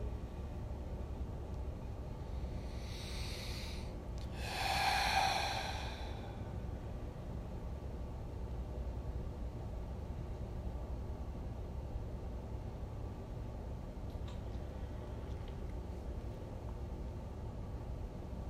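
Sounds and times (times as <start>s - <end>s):
low steady hum: 0.0s - 18.4s
deep breathing into the belly: 2.2s - 6.9s.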